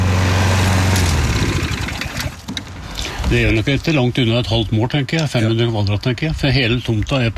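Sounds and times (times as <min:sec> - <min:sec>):
motorized lawnmower engine running: 0:00.0 - 0:03.6
speech: 0:03.3 - 0:07.3.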